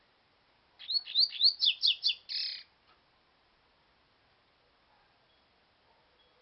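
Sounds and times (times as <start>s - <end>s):
Double-collared seedeater song with whistled notes and buzzy ending: 0.8s - 2.7s, 5.2s - 5.6s, 6.2s - 6.4s.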